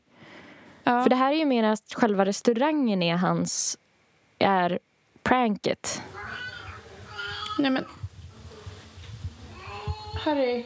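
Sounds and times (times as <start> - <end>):
speech: 0.9 - 3.8, 4.4 - 6.2, 7.6 - 8.0, 10.2 - 10.6
cat meowing loudly: 6.1 - 7.7.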